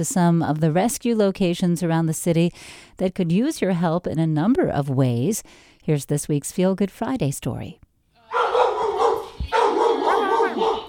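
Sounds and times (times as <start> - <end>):
speech: 0.0 - 7.8
large excited tan dog barking at an animal rescue: 8.3 - 10.8.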